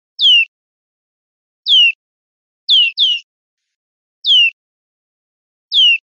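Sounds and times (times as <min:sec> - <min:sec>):
European greenfinch calls: 0:00.2 - 0:00.5, 0:01.7 - 0:02.0, 0:02.7 - 0:03.2, 0:04.2 - 0:04.6, 0:05.7 - 0:06.0.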